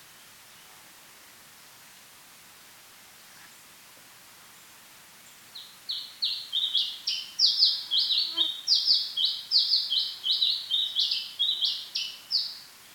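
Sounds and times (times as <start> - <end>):
house sparrow chirping song: 5.6 - 12.6.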